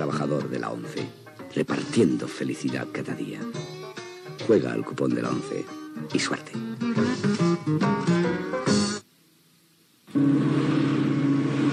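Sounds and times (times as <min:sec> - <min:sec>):
speech: 0:00.2 - 0:03.7, 0:04.5 - 0:08.6
new car engine revving: 0:10.2 - 0:11.7.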